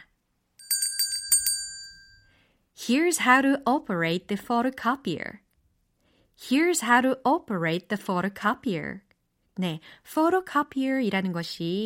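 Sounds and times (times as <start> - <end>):
ding-dong-dang correct answer chime of bell-like strikes: 0.6 - 2.4
speech: 2.9 - 5.4, 6.4 - 11.8.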